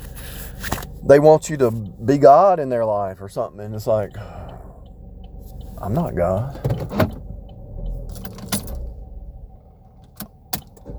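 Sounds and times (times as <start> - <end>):
truck cooling fan running behind parked car: 0.0 - 10.9
speech: 1.0 - 4.6, 5.8 - 7.2
sharp metallic clicks and jingles: 6.6 - 8.9.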